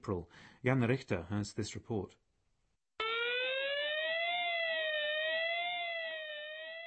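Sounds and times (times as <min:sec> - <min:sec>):
speech: 0:00.0 - 0:02.2
warning siren of the warning system at the Basra airbase in southern Iraq: 0:03.0 - 0:06.8.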